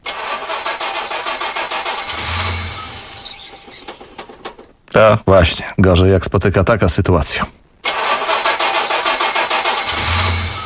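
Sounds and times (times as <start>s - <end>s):
car engine cranking on a frozen snowy winter morning: 0.0s - 4.7s, 7.8s - 10.6s
speech: 5.0s - 7.6s.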